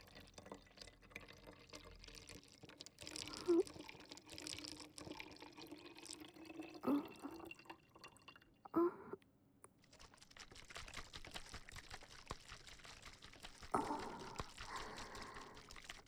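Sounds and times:
water poured to mix a cleaning solution, trickling and dripping: 0.0s - 9.2s, 9.8s - 16.0s
water splashing while mixing a cleaning solution: 9.9s - 16.0s.

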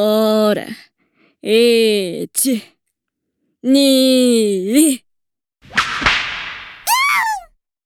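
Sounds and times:
speech: 0.0s - 0.8s, 1.4s - 2.8s, 3.6s - 5.1s
whip cracks lashing a person's buttocks: 5.7s - 7.4s
high wavering cry: 6.9s - 7.5s.

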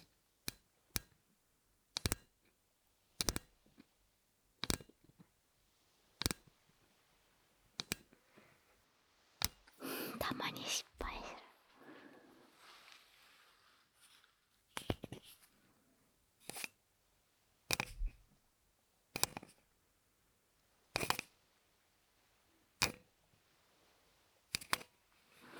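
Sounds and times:
Surface Pen stylus clicking: 0.0s - 1.2s, 1.9s - 2.4s, 3.1s - 3.9s, 4.6s - 5.2s, 6.2s - 6.6s, 7.7s - 8.2s, 9.4s - 9.8s, 16.4s - 16.8s, 17.7s - 18.2s, 19.1s - 19.6s, 20.9s - 21.4s, 22.8s - 23.1s, 24.5s - 24.9s
speech: 10.2s - 10.9s.

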